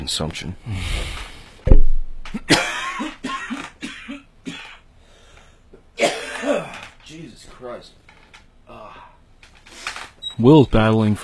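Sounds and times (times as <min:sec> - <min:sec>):
speech: 0:00.0 - 0:01.3, 0:02.4 - 0:02.7, 0:10.4 - 0:11.2
person coughing harshly: 0:02.4 - 0:04.8, 0:06.0 - 0:06.9.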